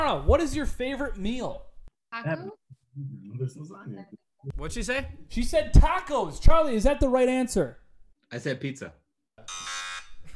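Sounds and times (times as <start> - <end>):
speech: 0.1 - 9.5
loud harsh electronic wrong-answer buzzer: 9.4 - 10.2.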